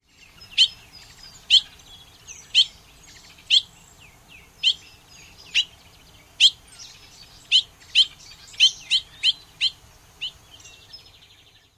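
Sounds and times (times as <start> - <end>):
bobolink pink calls: 0.4 - 1.8, 2.4 - 2.8, 3.4 - 3.8, 4.6 - 5.8, 6.4 - 10.4.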